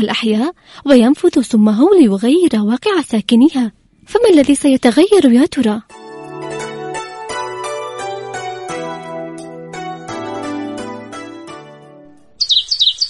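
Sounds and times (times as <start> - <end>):
speech: 0.0 - 5.9
gentle tonal music: 5.8 - 12.5
sparrow chirping: 12.3 - 13.0.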